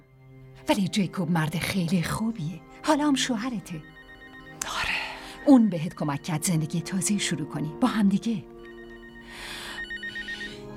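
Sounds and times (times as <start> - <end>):
speech: 0.6 - 4.0, 5.5 - 8.5
telephone ringing: 3.0 - 7.4, 8.4 - 10.7.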